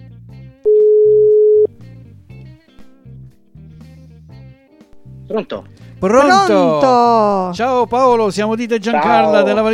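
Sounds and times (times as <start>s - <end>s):
ringback tone of an outgoing phone call: 0.7s - 1.7s
speech: 5.3s - 9.7s.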